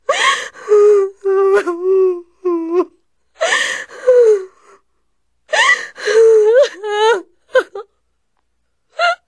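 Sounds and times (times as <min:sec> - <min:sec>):
woman crying: 0:00.1 - 0:04.6, 0:05.5 - 0:07.9.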